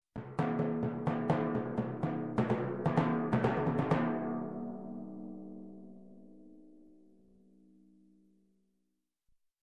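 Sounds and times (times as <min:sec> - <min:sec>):
majestic timpani drums: 0:00.2 - 0:04.7.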